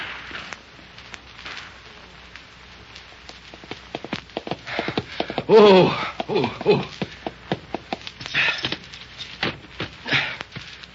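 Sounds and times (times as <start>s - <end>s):
steady hiss: 0.0s - 10.9s
galloping hoofbeats of a ridden mare: 3.5s - 8.9s
speech: 5.5s - 7.0s.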